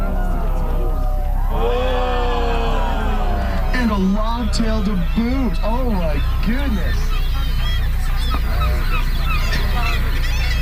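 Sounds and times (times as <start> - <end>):
seabirds honking and squawking at a breeding colony: 0.0 - 10.6
steady low rumble of wind or surf: 0.0 - 10.6
speech: 4.0 - 7.3.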